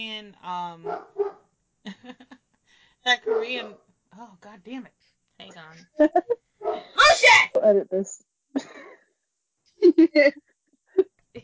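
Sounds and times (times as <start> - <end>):
speech: 0.0 - 2.4, 3.0 - 8.9, 9.8 - 11.4
dogs barking: 0.8 - 1.4, 3.2 - 3.8, 6.6 - 7.2
dogs yipping: 6.6 - 7.4.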